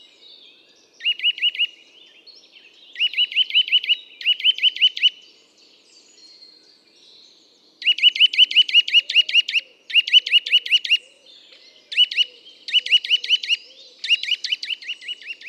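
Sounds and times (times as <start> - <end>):
Eurasian nuthatch Sitta europaea whistling: 1.0 - 1.7, 3.0 - 5.2, 7.8 - 11.0, 11.9 - 15.4.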